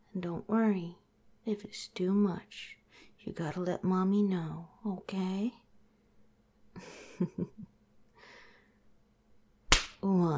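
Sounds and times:
speech: 0.2 - 5.6, 6.8 - 7.7, 10.0 - 10.3
sharp slap: 9.7 - 10.0.

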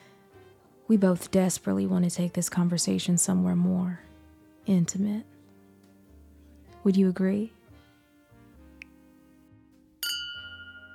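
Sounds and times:
speech: 0.9 - 4.1, 4.7 - 5.4, 6.8 - 7.6
glasses clinking in a toast: 10.0 - 10.9.

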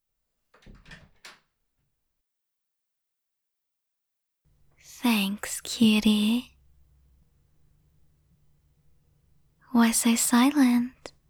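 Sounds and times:
room door creaking and rattling as it opens: 0.5 - 1.6
speech: 4.8 - 6.5, 9.8 - 11.2.

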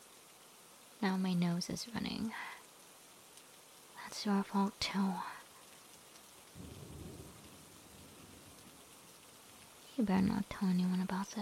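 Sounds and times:
heavy rain: 0.0 - 11.3
speech: 1.0 - 2.5, 4.2 - 5.3, 10.0 - 11.3
deep rumble of thunder: 6.6 - 9.2.

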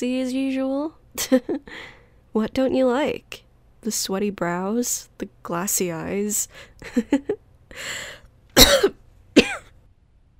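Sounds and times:
speech: 0.0 - 9.0
raspy breath: 1.6 - 2.2, 7.7 - 8.3
person with a cold clearing throat: 8.6 - 9.7
person with a cold coughing: 8.6 - 9.7.

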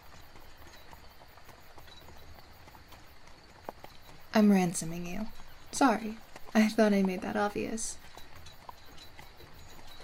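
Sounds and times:
hooves of a horse-drawn carriage clip-clopping: 0.0 - 10.0
speech: 4.4 - 8.0.

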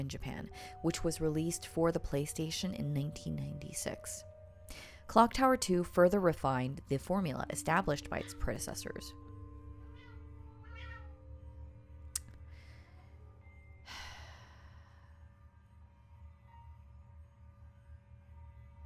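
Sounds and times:
speech: 0.0 - 9.2
steady low electrical hum: 0.0 - 18.8
domestic cat meowing: 10.0 - 11.2.

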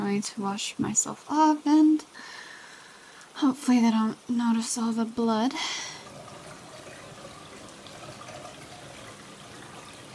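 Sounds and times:
speech: 0.2 - 2.4, 3.4 - 6.0
water pouring from a tap into a filling bathtub: 5.7 - 10.1.

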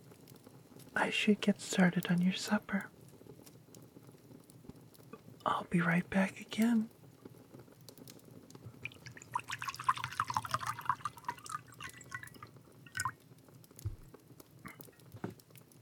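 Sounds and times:
speech: 1.0 - 3.0, 5.6 - 7.0
water poured into a pot to be boiled for supper: 8.7 - 13.4
dripping: 8.7 - 15.0.

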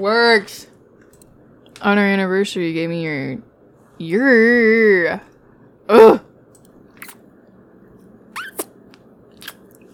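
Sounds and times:
speech: 0.0 - 0.7, 1.8 - 5.3, 5.9 - 6.2
short wet kissing smacks made with the mouth: 7.0 - 7.2, 8.4 - 8.8.

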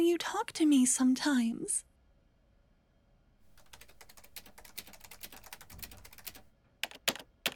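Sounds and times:
speech: 0.0 - 1.9
rapid, forceful typing on a computer keyboard: 3.5 - 7.5.

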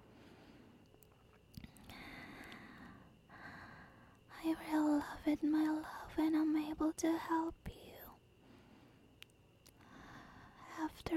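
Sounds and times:
airy breathing against the microphone: 0.0 - 0.8, 1.6 - 4.2, 8.4 - 9.1, 9.8 - 10.7
speech: 4.4 - 7.6.

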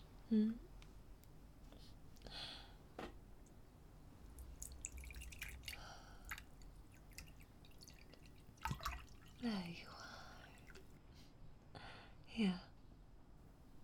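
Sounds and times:
speech: 0.3 - 0.7, 9.4 - 9.9, 12.4 - 12.6
drips and splashes of liquid: 4.3 - 10.9
cold drink being poured: 4.4 - 9.4.

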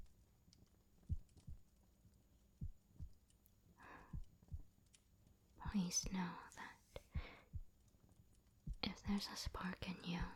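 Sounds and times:
slow heartbeat: 1.0 - 1.8, 2.6 - 3.2, 4.0 - 4.8, 7.0 - 7.8, 8.6 - 10.3
speech: 5.7 - 6.8, 9.1 - 10.3.

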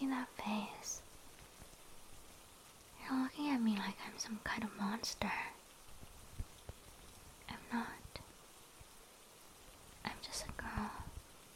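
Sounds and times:
person whispering: 0.0 - 1.0, 3.0 - 5.6, 7.5 - 8.2, 10.1 - 11.1
speech: 0.0 - 1.1, 3.1 - 5.6, 7.7 - 8.0
soft steady rain falling on a cold night: 0.0 - 11.5.

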